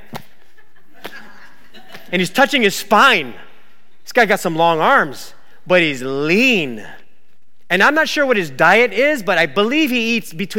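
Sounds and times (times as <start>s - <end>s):
hands slapping a back: 0.0s - 1.3s
laughter: 0.3s - 2.2s
speech: 2.1s - 3.4s, 4.1s - 7.0s, 7.7s - 10.5s.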